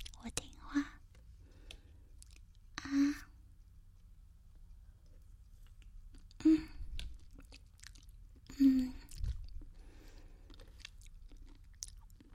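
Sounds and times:
chewing food while eating: 0.0s - 0.5s, 1.2s - 2.8s, 4.6s - 12.3s
speech: 0.2s - 0.9s.

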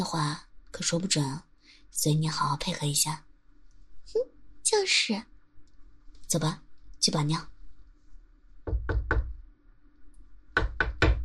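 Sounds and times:
speech: 0.0s - 3.3s, 4.1s - 5.3s, 6.3s - 7.5s
sharp knocks on a door: 8.6s - 9.4s, 10.6s - 11.2s.

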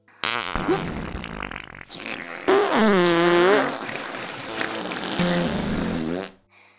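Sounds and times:
fart sound effects: 0.2s - 6.4s.

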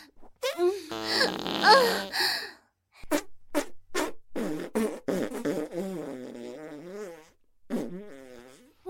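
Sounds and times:
long loud wavering fart: 0.9s - 1.8s, 3.1s - 8.8s.

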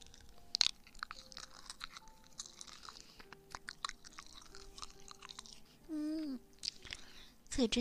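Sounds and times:
chewing soft gummy candy: 0.0s - 5.8s, 6.6s - 7.2s
person humming: 5.8s - 6.5s.

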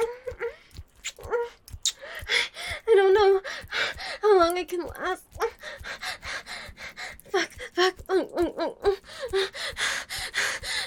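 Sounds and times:
heavy rapid panting breaths: 0.0s - 10.8s
person gasping: 1.9s - 4.3s, 5.3s - 8.1s, 8.8s - 10.8s
speech: 4.6s - 5.3s.

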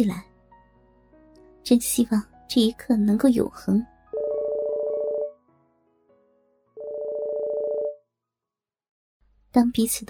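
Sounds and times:
speech: 0.0s - 0.3s, 1.7s - 3.9s, 9.5s - 10.0s
mobile phone ringing with electronic trills: 4.2s - 5.4s, 6.8s - 8.0s.

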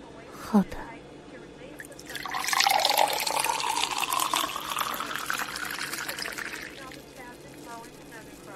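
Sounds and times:
speech: 0.5s - 0.9s
1982 Lafite red wine poured from a bottle into a glass: 1.8s - 7.9s.

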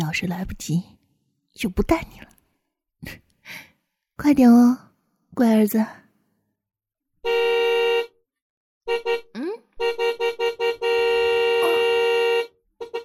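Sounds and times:
speech: 0.0s - 1.0s, 1.6s - 2.4s, 3.0s - 6.0s, 7.2s - 7.6s, 8.9s - 10.5s
car horn honking: 7.2s - 8.1s, 8.9s - 13.0s.

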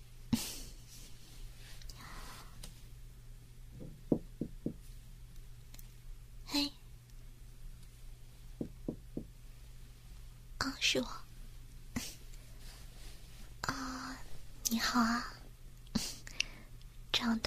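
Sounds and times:
low steady hum: 0.0s - 17.4s
soft breathing: 0.7s - 2.8s, 12.0s - 14.6s, 16.2s - 16.8s
knocking on a hotel room door: 3.8s - 4.8s, 8.6s - 9.4s.

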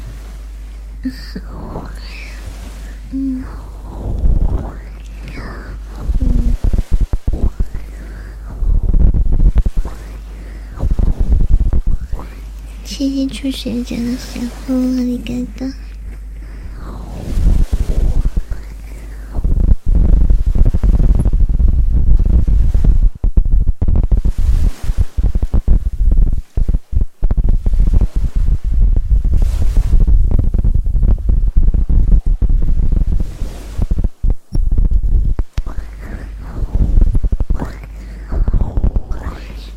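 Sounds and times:
deep low rumble: 0.0s - 39.7s
faint breathy whispers: 0.9s - 20.8s, 35.6s - 39.7s
speech: 1.0s - 2.3s, 3.1s - 4.2s, 13.1s - 15.8s
person's heartbeat heard with an ear pressed against the chest: 2.7s - 39.7s.

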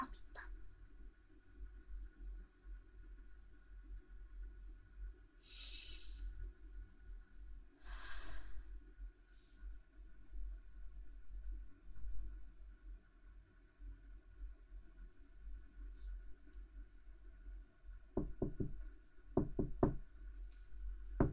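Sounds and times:
low steady hum: 0.0s - 21.3s
firm knocks on a door: 18.2s - 20.1s, 21.2s - 21.3s.

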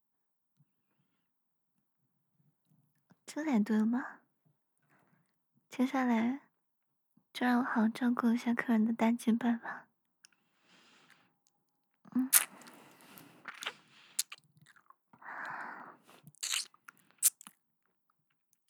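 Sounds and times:
speech: 3.4s - 4.2s, 5.7s - 6.4s, 7.4s - 9.9s, 12.1s - 12.5s
person biting and chewing food: 12.2s - 17.6s.

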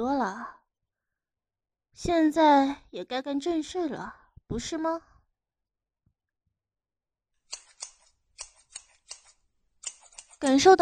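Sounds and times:
speech: 0.0s - 0.6s, 2.0s - 5.1s, 10.4s - 10.7s
scissors opening and closing in crisp metallic snips: 7.5s - 10.7s.

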